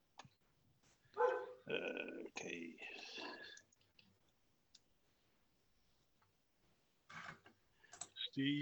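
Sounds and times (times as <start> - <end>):
dog barking: 1.2 - 1.6
speech: 8.4 - 8.5.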